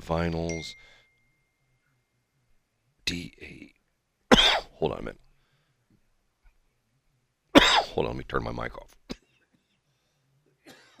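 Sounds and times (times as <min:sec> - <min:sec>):
faint steady electrical hum: 0:00.0 - 0:10.9
speech: 0:00.1 - 0:01.0, 0:03.1 - 0:03.8, 0:04.8 - 0:05.2, 0:07.6 - 0:09.1
person coughing: 0:04.3 - 0:04.7, 0:07.6 - 0:08.0, 0:10.6 - 0:10.9.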